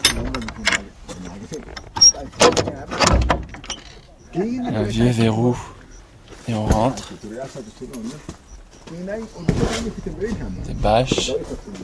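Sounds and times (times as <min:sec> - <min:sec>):
old metal door of a small sheet-metal shack creaking open: 0:00.0 - 0:04.1
clanking and scraping: 0:00.0 - 0:04.2, 0:09.3 - 0:11.7
speech: 0:01.5 - 0:03.0, 0:04.4 - 0:05.7, 0:06.5 - 0:11.8.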